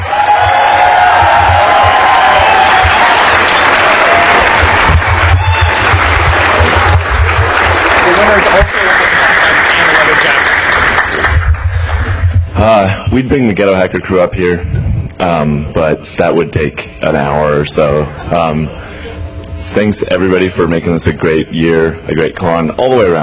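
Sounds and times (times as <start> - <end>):
large crowd applauding at a hacker conference: 0.0 - 12.3
speech: 12.6 - 18.8, 19.7 - 23.2.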